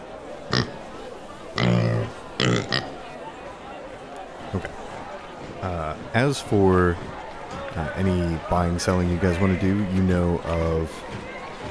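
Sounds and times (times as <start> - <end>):
chatter: 0.0 - 11.7
person imitating pig oinking: 1.6 - 2.9
speech: 6.2 - 7.1, 7.8 - 11.2.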